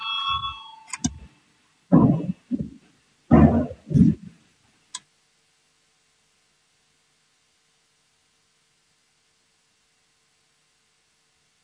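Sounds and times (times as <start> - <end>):
electronic voting bell ringing in a parliamentary session: 0.0 - 1.1
short bursts of low noise: 0.4 - 11.6.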